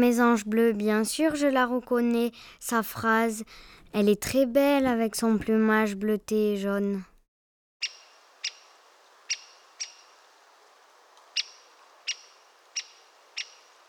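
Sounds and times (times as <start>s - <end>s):
speech: 0.0s - 7.1s
great spotted woodpecker calls: 7.8s - 10.4s, 11.1s - 13.8s.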